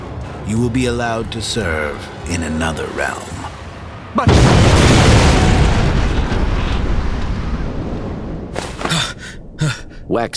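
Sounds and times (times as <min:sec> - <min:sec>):
speech: 0:00.5 - 0:03.4, 0:04.2 - 0:04.6, 0:09.6 - 0:10.3
loud deep explosion boom: 0:04.3 - 0:08.5.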